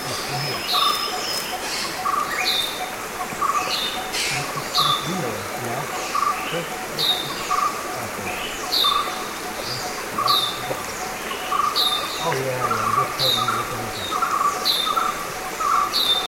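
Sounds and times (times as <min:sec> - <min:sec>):
Grey-headed Bulbul Pycnonotus priocephalus sharp downslurred calls: 0:00.0 - 0:16.2
Grey-headed bulbul lower chirp: 0:00.0 - 0:16.2.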